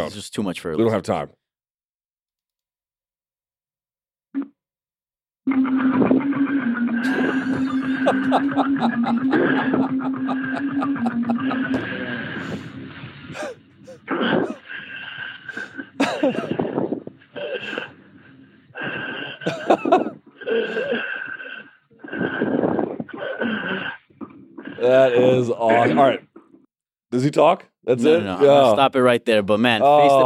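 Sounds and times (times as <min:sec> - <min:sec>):
speech: 0:00.0 - 0:01.4, 0:05.5 - 0:06.4, 0:07.0 - 0:12.7, 0:13.3 - 0:14.6, 0:16.2 - 0:16.6, 0:24.8 - 0:26.3, 0:27.1 - 0:30.2
laughter: 0:07.0 - 0:12.2, 0:19.5 - 0:20.8
heavy mouth breathing: 0:11.7 - 0:18.0, 0:18.7 - 0:19.6, 0:20.4 - 0:25.2.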